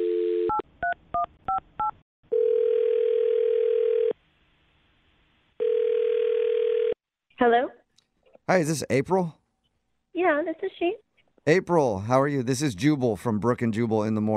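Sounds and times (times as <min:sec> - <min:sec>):
telephone ringback tone: 0:00.0 - 0:00.6, 0:02.3 - 0:04.2, 0:05.6 - 0:07.0
speech: 0:07.4 - 0:07.8, 0:08.5 - 0:09.4, 0:10.2 - 0:14.3.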